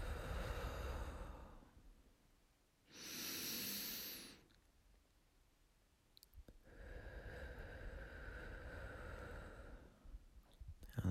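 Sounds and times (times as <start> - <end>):
deep meditative breathing during a guided sitting meditation: 0.0 - 1.8, 2.9 - 4.5, 6.6 - 11.0.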